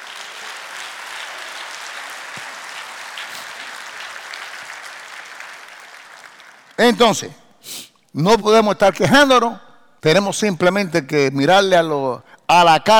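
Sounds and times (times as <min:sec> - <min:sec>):
audience clapping: 0:00.0 - 0:07.2
speech: 0:06.8 - 0:07.4, 0:08.2 - 0:12.9.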